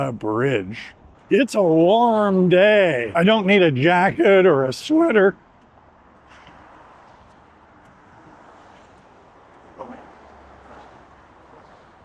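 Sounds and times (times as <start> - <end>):
speech: 0.0 - 5.4
road traffic roar: 0.0 - 12.0
vehicle passing: 2.6 - 12.0.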